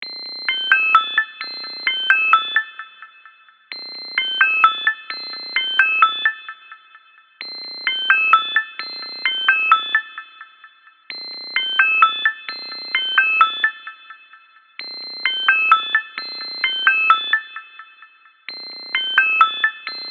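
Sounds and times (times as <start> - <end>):
phone ringtone: 0.5 - 3.1, 3.8 - 6.8, 7.6 - 10.2, 11.2 - 14.0, 14.8 - 17.7, 18.5 - 20.0.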